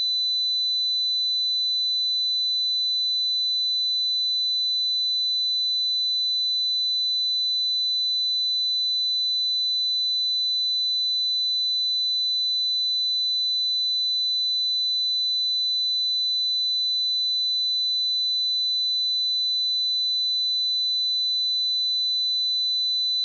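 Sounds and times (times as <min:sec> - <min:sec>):
2 kHz sine tone: 0:00.0 - 0:23.2.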